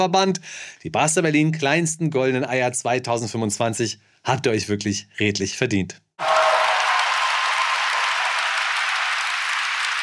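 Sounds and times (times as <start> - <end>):
speech: 0.0 - 6.5
steady dense crowd applause: 6.2 - 10.0.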